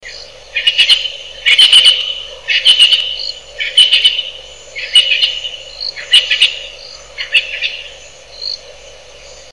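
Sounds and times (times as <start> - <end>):
steady hum: 0.0 - 9.5
Natal spurfowl harsh crackling calls: 0.5 - 7.9.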